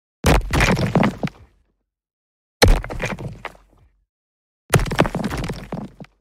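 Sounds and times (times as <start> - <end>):
brick: 0.3 - 1.6, 2.6 - 3.8, 4.7 - 6.1.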